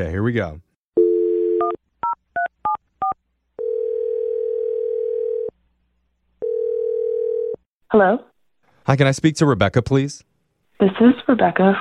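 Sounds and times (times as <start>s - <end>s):
speech: 0.0s - 0.7s, 7.9s - 8.3s, 8.9s - 11.7s
steady telephone dial tone: 1.0s - 1.8s, 3.6s - 5.5s, 6.4s - 7.6s.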